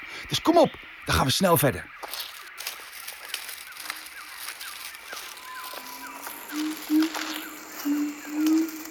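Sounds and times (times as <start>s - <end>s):
insects buzzing: 0.0s - 8.8s
speech: 0.2s - 2.3s
siamang gibbons calling from the forest canopy: 5.2s - 8.8s.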